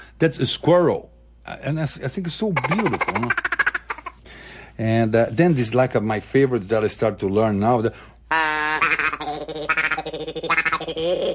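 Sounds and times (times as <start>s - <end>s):
speech: 0.2s - 3.5s, 4.8s - 8.4s, 10.3s - 11.3s
duck call being blown: 8.3s - 11.2s.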